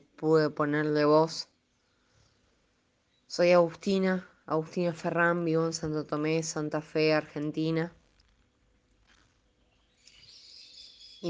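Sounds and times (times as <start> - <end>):
speech: 0.2 - 1.5, 3.3 - 8.0
birds chirping softly: 9.5 - 11.2.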